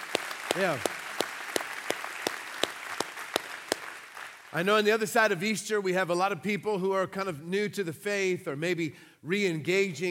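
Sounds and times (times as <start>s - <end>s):
church audience applauding: 0.0s - 4.8s
one person's sharp evenly spaced claps: 0.0s - 4.8s
speech: 0.6s - 1.0s, 4.5s - 10.1s.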